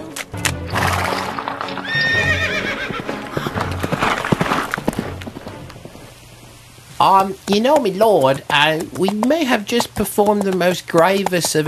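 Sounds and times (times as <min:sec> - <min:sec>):
horse hooves clip-clopping: 0:00.0 - 0:11.6
horse neighing: 0:01.8 - 0:04.0
speech: 0:07.1 - 0:11.6.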